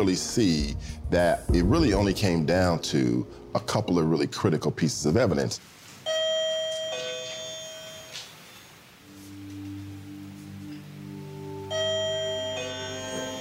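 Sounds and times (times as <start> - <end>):
speech: 0.0 - 5.8
wireless doorbell melodic electronic chime in a courtroom: 6.0 - 8.2, 11.7 - 13.3.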